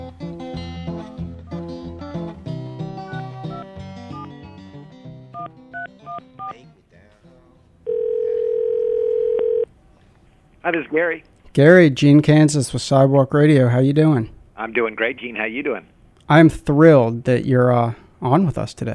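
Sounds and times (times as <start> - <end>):
music: 0.0 - 7.9
loud steady telephone dial tone while placing a call: 7.9 - 9.7
speech: 10.6 - 18.9.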